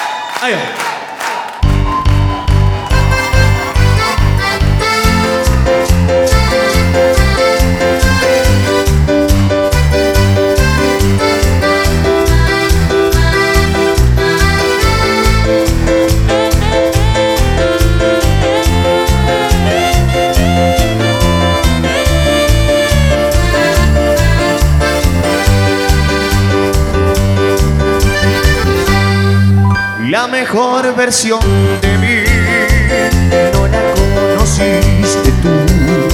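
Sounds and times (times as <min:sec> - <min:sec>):
speech: 0:00.4 - 0:00.9, 0:30.5 - 0:32.2
steady bouncing bass beat in cuarteto music: 0:01.6 - 0:29.8, 0:32.3 - 0:36.1
lively cuarteto music: 0:01.6 - 0:36.1
bright keyboard and brass-like melody lines: 0:02.7 - 0:36.1.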